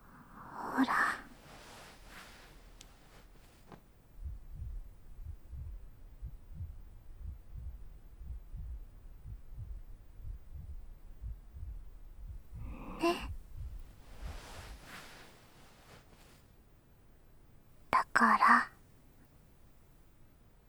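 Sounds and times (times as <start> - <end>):
speech: 0.8 - 1.0, 18.2 - 18.7
fast heartbeat in low pulses: 4.2 - 15.3.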